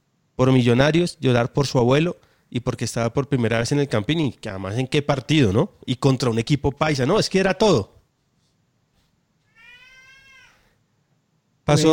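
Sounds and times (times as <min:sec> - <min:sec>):
quiet noise: 0:00.0 - 0:11.9
speech: 0:00.4 - 0:08.0, 0:11.7 - 0:11.9
cat meowing: 0:09.4 - 0:10.8.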